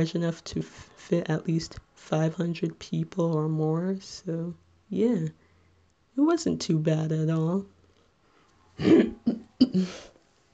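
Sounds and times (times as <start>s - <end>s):
speech: 0.0s - 5.4s, 6.2s - 7.7s, 8.8s - 10.1s
throat clearing from a troubled throat: 8.8s - 10.1s.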